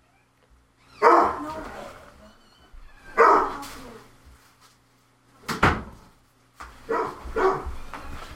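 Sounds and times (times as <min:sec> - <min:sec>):
dog barking: 0:01.0 - 0:01.5, 0:03.2 - 0:03.6, 0:06.9 - 0:07.8.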